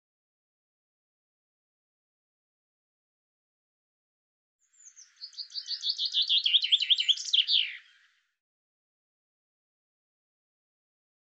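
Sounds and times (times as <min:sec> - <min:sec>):
bird giving high bouncy chirps: 0:04.6 - 0:08.3.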